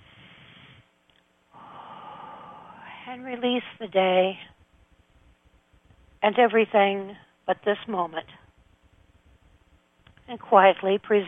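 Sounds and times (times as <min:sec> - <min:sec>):
deep breath during a guided meditation: 0:00.0 - 0:00.9, 0:01.5 - 0:03.1
speech: 0:03.1 - 0:04.5, 0:06.2 - 0:08.4, 0:10.3 - 0:11.2.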